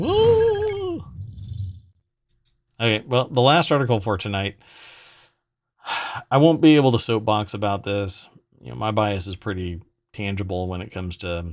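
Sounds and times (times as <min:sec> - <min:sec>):
loud voice imitating a cartoon frog puppet cheering: 0:00.0 - 0:01.2
speech: 0:02.8 - 0:05.0, 0:05.8 - 0:11.5.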